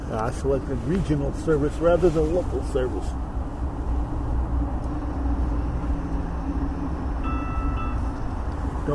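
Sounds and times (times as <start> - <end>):
speech: 0.1 - 3.3
train rolling past: 3.0 - 8.9
high-pitched squeals and whines of train wheels or brakes: 6.2 - 8.5.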